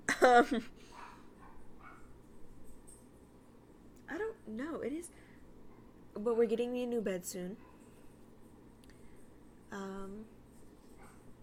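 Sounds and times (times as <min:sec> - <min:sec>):
speech: 0:00.2 - 0:01.0, 0:04.5 - 0:05.2, 0:06.2 - 0:07.7, 0:09.7 - 0:10.4
dogs barking in the background: 0:00.9 - 0:02.2.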